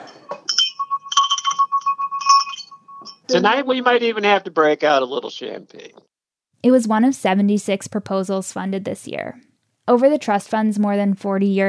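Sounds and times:
small hand bell ringing in celebration: 0.0s - 3.4s
speech: 3.3s - 6.0s, 6.6s - 11.6s.

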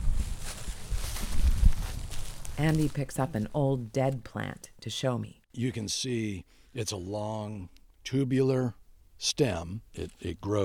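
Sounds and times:
footsteps crunching and rustling through coastal plain vegetation: 0.0s - 3.5s
speech: 2.6s - 10.6s.

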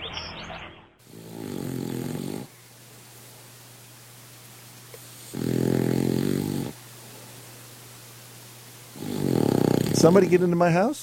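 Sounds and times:
small King Charles Spaniel snoring in its sleep: 1.0s - 2.6s, 5.1s - 6.8s, 8.9s - 10.3s
faint steady hum: 1.0s - 11.0s
speech: 10.0s - 11.0s.

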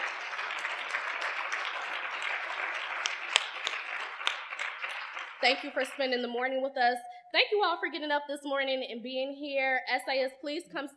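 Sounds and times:
audience applauding: 0.0s - 6.4s
speech: 5.4s - 10.9s.

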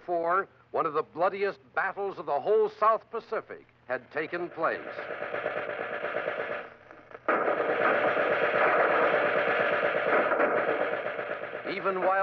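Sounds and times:
speech: 0.1s - 5.6s, 11.8s - 12.2s
light arms gunfire in a battle: 4.5s - 12.2s.

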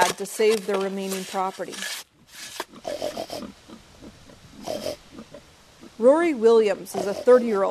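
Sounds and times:
pigs grunting and snuffling: 0.0s - 7.6s
speech: 0.2s - 2.1s, 6.0s - 7.6s
breathy pig snorts: 2.2s - 7.6s
short squealy pig oinks: 2.6s - 6.0s, 6.8s - 7.6s.

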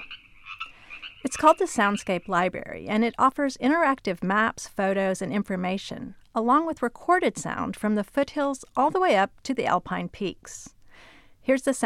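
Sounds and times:
Sierran tree frog croaking: 0.0s - 2.5s
speech: 1.3s - 10.8s, 11.4s - 11.8s.

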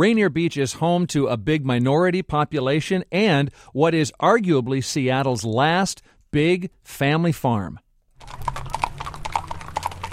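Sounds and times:
speech: 0.0s - 8.7s
horses' hooves clip-clopping along a street: 8.2s - 10.1s.

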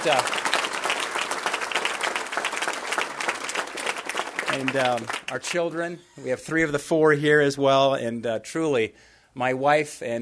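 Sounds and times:
speech: 0.0s - 0.5s, 4.5s - 10.2s
audience applauding family members on stage during an acceptance speech: 0.0s - 5.8s.

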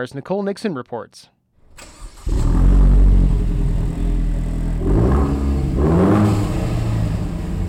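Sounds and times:
speech: 0.0s - 1.4s
Vanderhall three-wheeled autocycle roadster engine revving: 1.8s - 7.6s.

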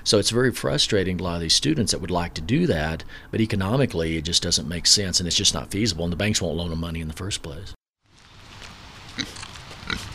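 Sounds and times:
speech: 0.1s - 7.8s, 9.2s - 10.0s
pigs grunting on a pig farm: 9.2s - 10.1s.

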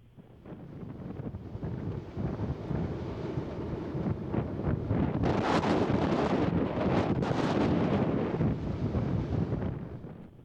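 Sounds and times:
Kilauea volcanic eruption roaring: 0.4s - 10.2s.

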